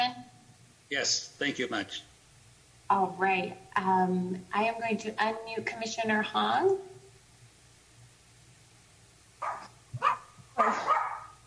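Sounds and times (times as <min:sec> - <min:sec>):
faint low hum: 0:00.0 - 0:11.4
speech: 0:00.9 - 0:02.1, 0:02.9 - 0:06.9
dog barking during a commission meeting: 0:09.4 - 0:11.4.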